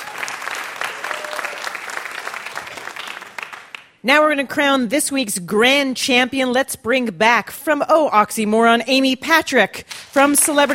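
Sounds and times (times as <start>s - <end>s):
audience applause: 0.0s - 3.9s
speech: 4.0s - 10.7s.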